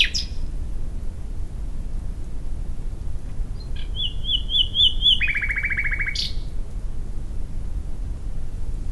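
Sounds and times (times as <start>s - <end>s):
common nightingale Luscinia megarhynchos song: 0.0s - 0.5s, 3.5s - 6.6s
low background rumble: 0.0s - 8.8s.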